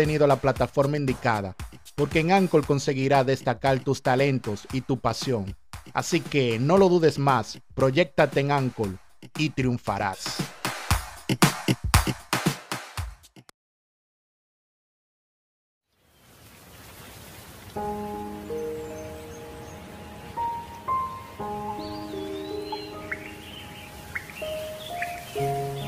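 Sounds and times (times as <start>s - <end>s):
speech: 0.0s - 10.6s, 11.3s - 11.8s
steady rain hissing: 16.2s - 25.8s
gentle sustained music notes: 17.8s - 25.8s
high bird chirps: 18.3s - 25.8s.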